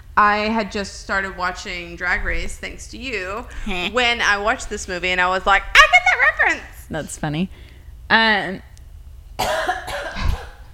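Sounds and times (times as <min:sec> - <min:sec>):
speech: 0:00.2 - 0:08.7, 0:09.4 - 0:09.7
person coughing from peanut candy bar nuts caught in the throat: 0:09.4 - 0:10.7.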